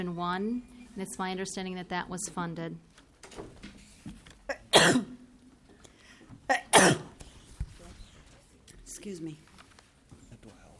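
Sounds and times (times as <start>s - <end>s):
speech: 0.0s - 3.6s, 9.0s - 9.5s
sneezes: 4.5s - 5.2s, 6.5s - 7.2s
catch of breath: 5.8s - 6.3s.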